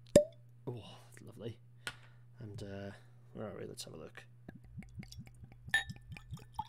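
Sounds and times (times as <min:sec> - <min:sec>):
speech: 0:00.7 - 0:01.7, 0:02.4 - 0:04.3
faint liquid sounds: 0:04.5 - 0:06.6
steady low rhythmic thumping: 0:04.5 - 0:06.6
whisky glass clink: 0:05.7 - 0:06.6.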